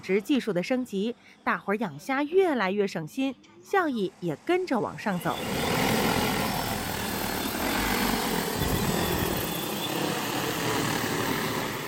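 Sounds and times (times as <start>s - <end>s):
speech: 0.0s - 5.8s
agricultural drone propellers buzzing while hovering over a shrimp pond: 4.1s - 11.8s.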